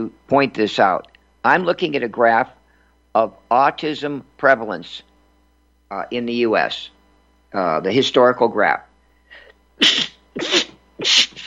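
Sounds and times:
speech: 0:00.0 - 0:05.1, 0:05.9 - 0:08.9, 0:09.8 - 0:11.4
human sneeze after leaving a cold room: 0:09.3 - 0:11.4.

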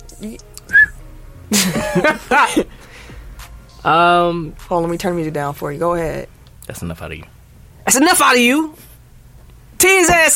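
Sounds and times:
person whistling through lips in place of a whistle: 0:00.0 - 0:01.0
speech: 0:00.2 - 0:00.8, 0:01.5 - 0:03.0, 0:03.8 - 0:07.3, 0:07.9 - 0:08.9, 0:09.8 - 0:10.3
laughter: 0:01.5 - 0:02.7.

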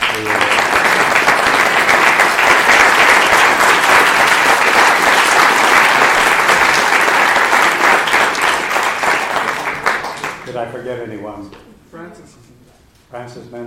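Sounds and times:
audience applause for people taking a bow: 0:00.0 - 0:10.6
speech: 0:10.7 - 0:11.6, 0:13.1 - 0:13.6.

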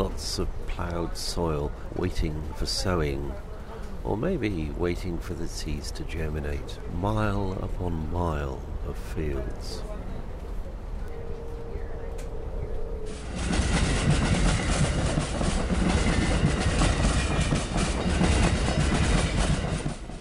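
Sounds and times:
speech: 0:00.0 - 0:09.9
another train passing: 0:00.0 - 0:20.1
train rumbling along the rails: 0:13.1 - 0:20.1.

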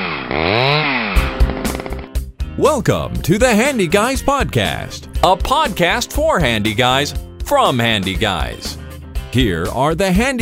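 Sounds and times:
chainsaw engine revving and sputtering: 0:00.0 - 0:02.3
speech: 0:02.6 - 0:10.4.

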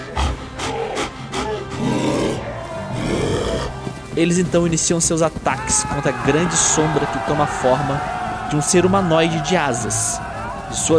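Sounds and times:
deep rumbling growl of a giant wolf during a transformation: 0:00.0 - 0:04.0
speech: 0:04.2 - 0:10.9.

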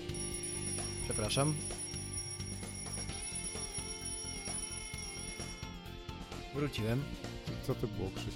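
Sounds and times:
alarm clock ringing with a rapid metallic bell: 0:00.1 - 0:05.8
speech: 0:01.2 - 0:01.7, 0:06.5 - 0:08.3.

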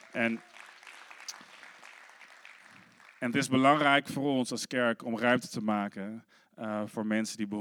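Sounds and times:
church audience applauding: 0:00.0 - 0:03.6
speech: 0:00.1 - 0:00.6, 0:03.2 - 0:07.5.

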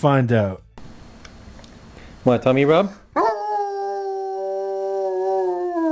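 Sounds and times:
speech: 0:00.0 - 0:00.6, 0:02.2 - 0:03.3
dog howling in a long tuneful note: 0:03.2 - 0:05.9.

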